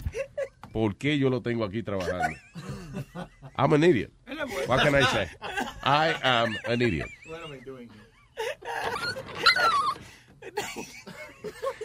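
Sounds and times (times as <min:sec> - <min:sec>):
speech: 0:00.8 - 0:07.2
laughter: 0:02.0 - 0:03.6, 0:04.5 - 0:11.8
dog whimpering and crying in high-pitched whining bursts: 0:08.7 - 0:10.0.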